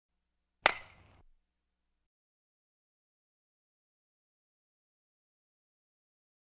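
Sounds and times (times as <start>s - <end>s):
baseball bat hitting baseball: 0.6s - 1.3s.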